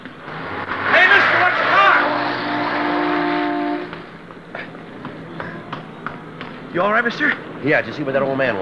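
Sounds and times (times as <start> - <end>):
car speeding past in a street with engine roaring: 0.0 - 4.5
speech: 6.8 - 8.6.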